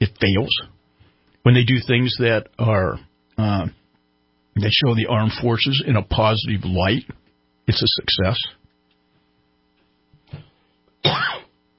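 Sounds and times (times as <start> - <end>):
speech: 0.2 - 0.8, 1.4 - 3.8, 4.6 - 8.6, 11.0 - 11.4
person coughing: 10.3 - 11.6.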